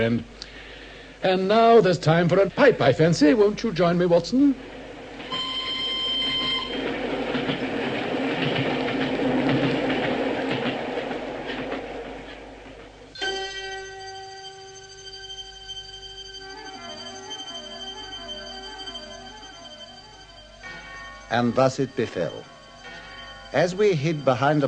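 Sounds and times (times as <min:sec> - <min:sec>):
speech: 0:00.0 - 0:00.5, 0:01.2 - 0:04.8, 0:21.4 - 0:22.6, 0:23.5 - 0:24.6
steady high ringing tones with a warbling lower line: 0:01.4 - 0:08.4, 0:12.5 - 0:24.6
special train of a single carriage thundering past: 0:01.4 - 0:24.6.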